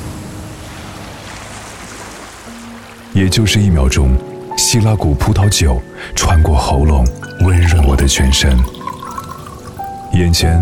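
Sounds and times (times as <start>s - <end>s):
Atlantic ocean waves crashing against rocks: 0.0s - 3.2s
speech: 3.2s - 8.8s, 10.2s - 10.6s.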